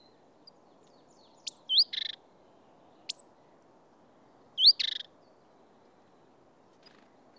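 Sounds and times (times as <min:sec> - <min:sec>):
great tit Parus major notes, whistles and buzzy rattles: 0:00.0 - 0:02.2, 0:03.0 - 0:03.3, 0:04.6 - 0:05.2.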